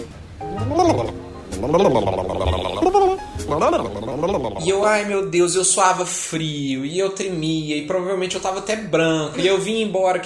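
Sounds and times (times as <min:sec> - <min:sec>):
voice imitating a rumbling stomach with warbling gurgling bursts: 0:00.5 - 0:05.0
speech: 0:00.6 - 0:02.8, 0:03.4 - 0:10.2.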